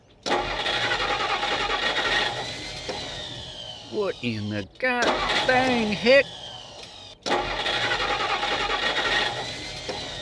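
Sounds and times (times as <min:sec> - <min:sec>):
old truck engine cranking and sputtering, failing to start: 0:00.2 - 0:10.2
speech: 0:04.0 - 0:06.4.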